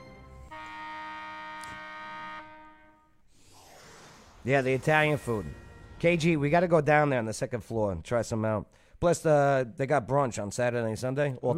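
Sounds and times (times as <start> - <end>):
loud steady electronic buzzer blaring: 0.5 - 3.2
speech: 4.4 - 11.5.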